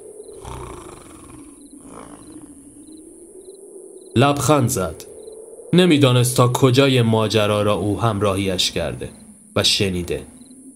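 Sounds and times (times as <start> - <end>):
crickets chirping: 0.0 - 10.7
man snoring with deep rasping breaths: 0.4 - 2.9
speech: 4.2 - 5.1, 5.7 - 10.3.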